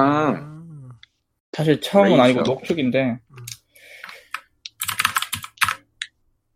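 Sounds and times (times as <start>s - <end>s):
speech: 1.6s - 3.2s
clicky mechanical keyboard keystrokes: 4.3s - 5.9s.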